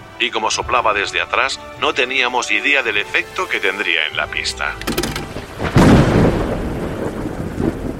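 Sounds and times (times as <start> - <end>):
speech: 0.2 - 5.1
rain-like hiss: 2.5 - 7.9
thunder rumbling during a storm: 4.8 - 7.9.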